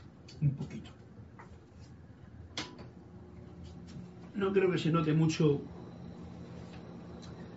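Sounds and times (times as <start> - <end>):
low mechanical hum with a soft airy hiss: 0.0 - 7.5
speech: 0.4 - 1.0, 4.4 - 5.8.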